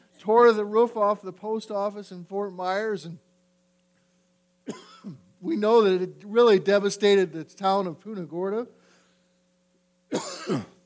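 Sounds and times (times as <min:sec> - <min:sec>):
faint steady hum: 0:00.0 - 0:10.8
speech: 0:00.2 - 0:03.3, 0:04.7 - 0:08.8, 0:10.1 - 0:10.7
throat-clearing cough: 0:04.6 - 0:05.3, 0:10.1 - 0:10.8.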